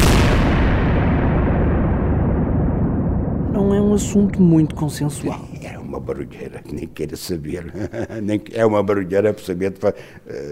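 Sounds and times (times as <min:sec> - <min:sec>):
cannon blast: 0:00.0 - 0:07.0
speech: 0:04.0 - 0:10.5
laughter: 0:06.5 - 0:08.9, 0:10.0 - 0:10.5.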